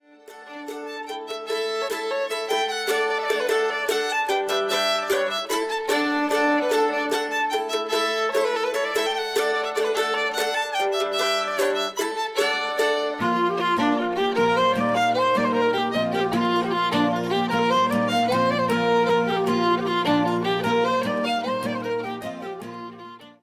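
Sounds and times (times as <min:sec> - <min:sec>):
polka music: 0:00.5 - 0:23.4.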